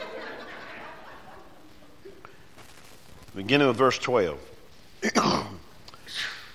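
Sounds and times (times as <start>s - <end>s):
laughter: 0.0s - 2.4s
speech: 3.4s - 4.5s
sneeze: 5.0s - 6.5s
soft breathy exhale: 6.0s - 6.5s.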